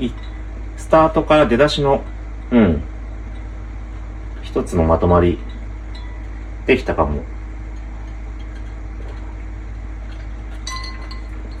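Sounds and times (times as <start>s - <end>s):
speech: 0.0s - 0.3s, 0.9s - 2.9s, 4.5s - 5.5s, 6.7s - 7.3s
steady low hum: 0.0s - 11.5s
ice cubes clinking against a drinking glass of grapefruit sour: 10.6s - 11.5s.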